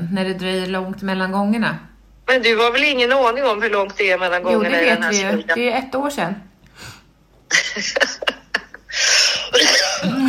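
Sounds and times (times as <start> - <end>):
speech: 0.1 - 6.9, 7.5 - 8.4
laughter: 7.5 - 10.2
person in a harsh coughing fit: 9.0 - 10.2.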